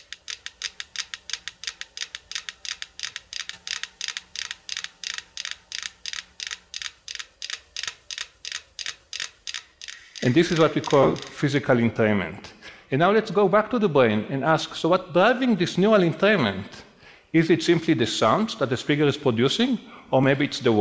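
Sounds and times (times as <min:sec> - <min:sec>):
many metronomes on a shared wooden platform clicking in sync: 0:00.0 - 0:11.7
speech: 0:10.2 - 0:20.7.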